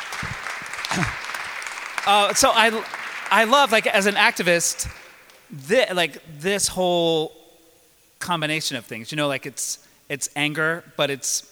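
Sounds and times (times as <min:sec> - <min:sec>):
person cheering: 0:00.0 - 0:01.4, 0:02.0 - 0:05.1
crowd clapping: 0:00.0 - 0:05.5
speech: 0:01.0 - 0:01.2, 0:02.1 - 0:07.4, 0:08.2 - 0:11.4.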